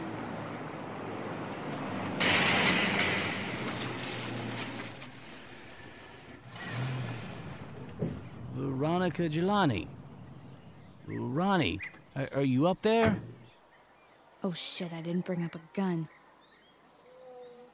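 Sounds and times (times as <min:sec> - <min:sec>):
truck engine rumbling: 0:00.0 - 0:13.5
speech: 0:09.0 - 0:10.0, 0:11.1 - 0:13.3, 0:14.4 - 0:16.2.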